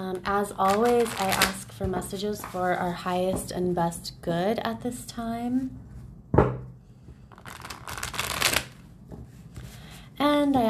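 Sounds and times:
speech: 0.1s - 5.8s
tarot cards being shuffled: 0.6s - 1.6s, 7.3s - 8.8s.

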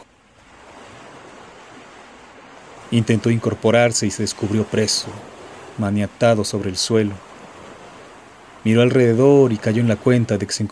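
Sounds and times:
ocean waves breaking on shore: 0.0s - 10.7s
speech: 2.9s - 7.3s, 8.6s - 10.7s.

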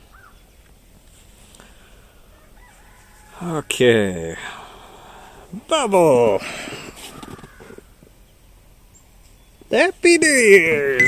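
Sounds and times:
faint short bird calls: 0.0s - 0.7s, 1.6s - 3.7s, 6.4s - 9.7s
outdoor noise: 0.0s - 11.0s
speech: 3.4s - 4.6s, 5.5s - 6.8s, 9.7s - 11.0s.

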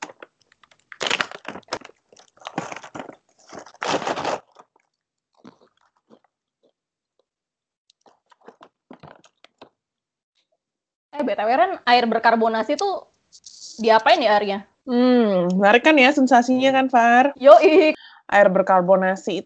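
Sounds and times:
snack packet being torn open: 0.0s - 6.7s, 7.9s - 9.7s
crunching and chewing of snack: 0.0s - 9.7s
speech: 11.2s - 19.4s.

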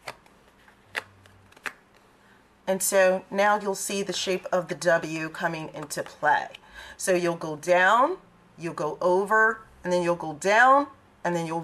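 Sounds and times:
playing cards being set down on a table: 0.0s - 2.4s
speech: 2.7s - 11.6s.

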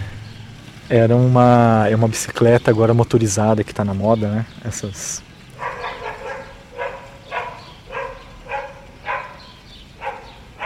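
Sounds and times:
speech: 0.9s - 5.3s
dog barking: 5.6s - 10.6s.

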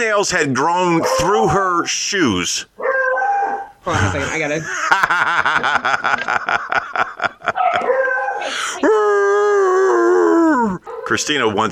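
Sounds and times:
speech: 0.0s - 2.8s, 3.8s - 7.1s, 10.7s - 11.7s
beagle baying howl: 2.8s - 3.8s, 7.6s - 11.1s
laughter: 3.9s - 10.8s.

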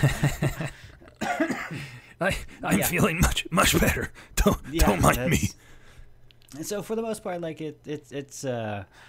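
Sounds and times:
speech: 0.0s - 0.6s, 2.2s - 5.6s, 6.5s - 9.0s
person coughing into the microphone: 1.1s - 2.0s.

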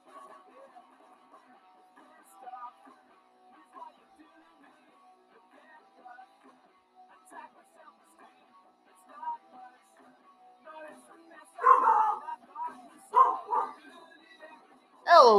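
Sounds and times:
dog yipping and whining: 11.6s - 12.2s, 13.2s - 13.8s
dog barking: 11.6s - 12.3s, 13.1s - 13.9s.

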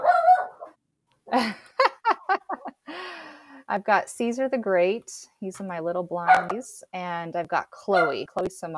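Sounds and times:
small puppy yapping at someone outside: 0.0s - 0.7s, 6.3s - 6.5s
speech: 1.3s - 1.6s, 3.7s - 8.7s
laughter: 1.3s - 3.3s.

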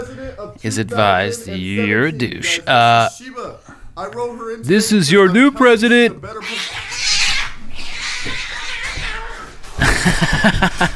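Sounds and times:
speech: 0.3s - 6.8s, 10.1s - 10.9s
cat yowling and snarling while attacking a man: 6.4s - 9.5s
laughter: 9.8s - 10.9s.

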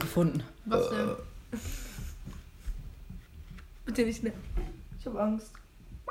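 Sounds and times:
speech: 0.2s - 1.3s, 4.0s - 4.5s, 5.2s - 5.6s
loud drawn-out burp: 0.7s - 1.2s.

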